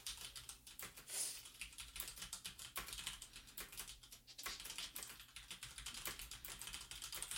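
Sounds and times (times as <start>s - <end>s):
typing on a mechanical computer keyboard: 0.0s - 7.3s.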